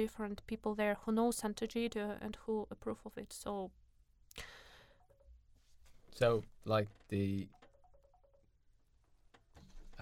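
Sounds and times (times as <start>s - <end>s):
speech: 0.0s - 3.8s, 4.4s - 4.6s, 6.1s - 7.6s
phone ringing with short electronic beeps: 7.5s - 8.5s.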